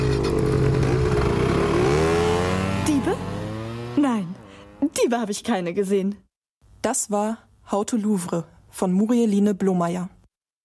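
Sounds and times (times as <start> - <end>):
motor scooter engines revving as riders drive off: 0.0 - 4.9
speech: 4.1 - 6.2, 6.8 - 10.2.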